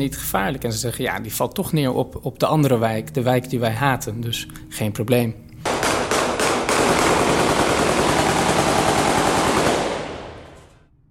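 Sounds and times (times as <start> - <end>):
speech: 0.0 - 5.4
heavy automatic gunfire fired into the air at a funeral in Beirut: 5.6 - 10.7.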